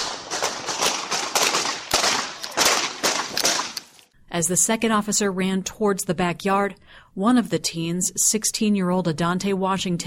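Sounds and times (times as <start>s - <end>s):
gunshots: 0.0s - 4.0s
speech: 4.4s - 10.0s.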